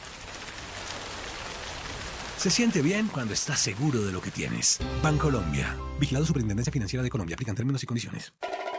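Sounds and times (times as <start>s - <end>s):
steady dense rain pattering against a window: 0.0s - 4.8s
speech: 2.4s - 8.7s.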